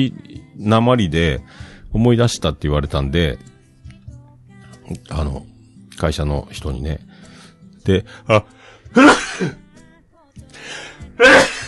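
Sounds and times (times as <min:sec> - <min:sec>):
speech: 0:00.0 - 0:03.5, 0:04.9 - 0:07.1, 0:07.8 - 0:09.6, 0:10.6 - 0:11.5
faint breathy sounds: 0:01.4 - 0:01.9, 0:07.0 - 0:08.9
person sneezing: 0:08.9 - 0:09.6, 0:11.2 - 0:11.6.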